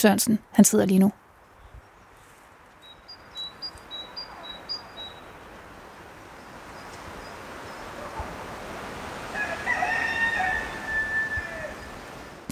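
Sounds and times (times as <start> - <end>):
speech: 0.0 - 1.2
small birds chirping in woodland: 1.4 - 5.7, 6.3 - 8.3
nature school rooster crowing in a forest: 9.2 - 12.0.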